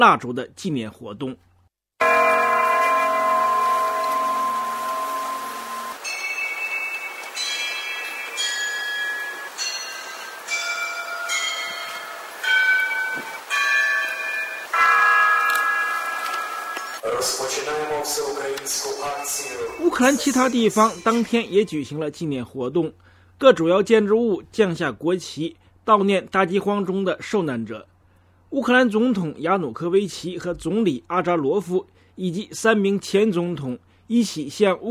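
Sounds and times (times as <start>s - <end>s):
speech: 0.0s - 1.5s, 18.1s - 27.9s, 28.5s - 34.9s
ceremonial bells tolling at a memorial ceremony: 2.0s - 22.0s.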